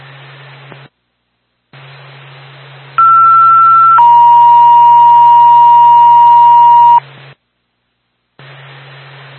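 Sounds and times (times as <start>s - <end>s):
two-part ambulance dispatch pager alert: 3.0s - 7.0s.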